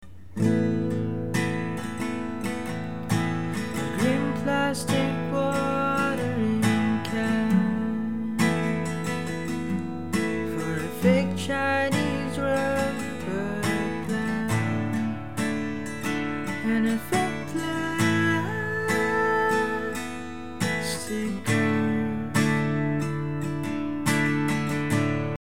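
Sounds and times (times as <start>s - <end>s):
guitar: 0.0s - 25.4s
person singing into a microphone without echo: 3.7s - 15.2s, 16.6s - 23.2s.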